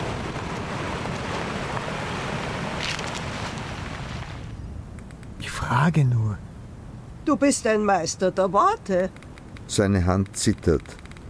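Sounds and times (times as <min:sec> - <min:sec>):
strong wind roaring with brighter gusts: 0:00.0 - 0:05.6
speech: 0:05.7 - 0:06.5, 0:07.3 - 0:11.0.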